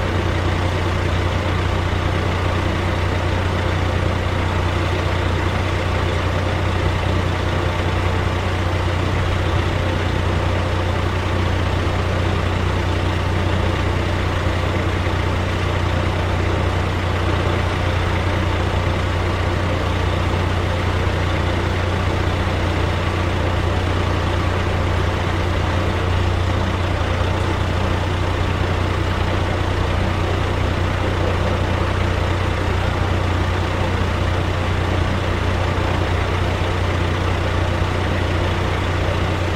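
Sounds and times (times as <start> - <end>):
truck engine idling: 0.0 - 39.5.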